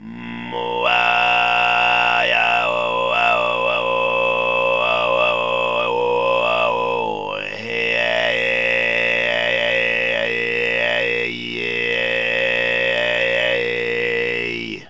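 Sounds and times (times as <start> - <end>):
throat singing: 0.0 - 14.8.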